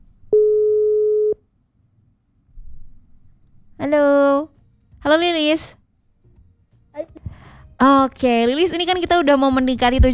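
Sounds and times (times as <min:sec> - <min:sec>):
telephone tone while redialing a call: 0:00.3 - 0:01.4
speech: 0:05.1 - 0:05.8, 0:07.8 - 0:10.1.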